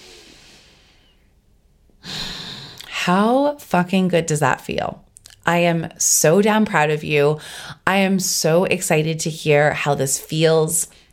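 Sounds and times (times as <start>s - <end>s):
deep breath in and out during a guided calming exercise: 0.0s - 1.4s, 2.0s - 2.8s
speech: 3.1s - 11.0s.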